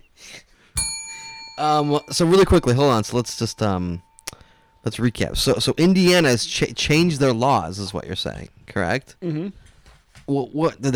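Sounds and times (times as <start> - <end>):
bell ringing: 0.8 - 6.6
speech: 1.6 - 4.1, 4.8 - 9.6, 10.3 - 10.9.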